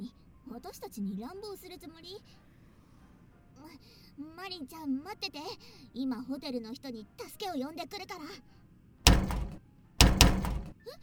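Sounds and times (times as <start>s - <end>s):
speech: 0.7s - 2.5s, 3.6s - 8.6s
heavy thuds from someone shoving against a hotel room door stuck shut: 9.1s - 10.8s.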